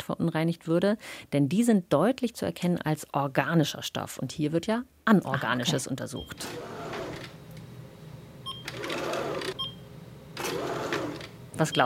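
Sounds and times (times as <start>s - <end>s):
speech: 0.1s - 6.8s, 11.6s - 11.8s
laboratory scale whirring in front of a clean room: 6.2s - 7.6s, 8.4s - 11.8s.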